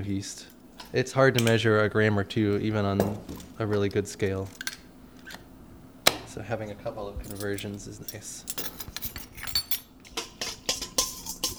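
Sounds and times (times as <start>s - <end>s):
speech: 0.0s - 4.6s, 6.4s - 8.9s
whisk clinking against a bowl dissolving yeast in liquid for pretzel dough: 7.3s - 11.5s.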